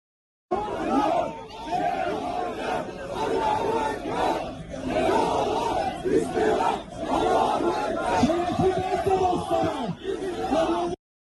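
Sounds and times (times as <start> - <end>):
large crowd of protesters shouting and chanting near the Israeli consulate in Turkey: 0.5 - 11.0.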